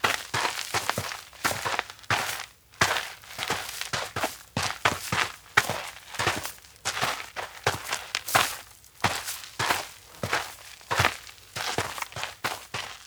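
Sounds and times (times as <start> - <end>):
footsteps outdoors in a forest: 0.0 - 13.0.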